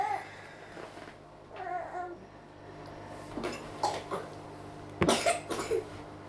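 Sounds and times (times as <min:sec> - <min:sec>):
low hum: 0:00.0 - 0:06.2
baby babbling: 0:01.6 - 0:02.2
baby coughing: 0:03.8 - 0:04.3, 0:05.0 - 0:05.9.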